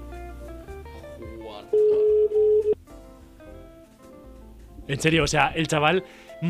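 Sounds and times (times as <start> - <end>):
music: 0.0 - 6.4
speech: 1.5 - 2.0, 4.9 - 6.4
phone dialing tone: 1.7 - 2.8.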